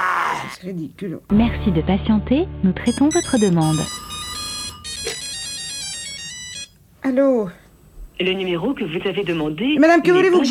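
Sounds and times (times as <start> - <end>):
speech: 0.5 - 4.0, 7.0 - 7.6, 8.2 - 10.4
electronic telephone ringtone: 2.9 - 6.8.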